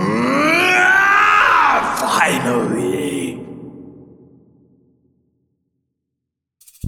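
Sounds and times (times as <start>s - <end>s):
deep harsh growling creature scream: 0.0s - 4.7s.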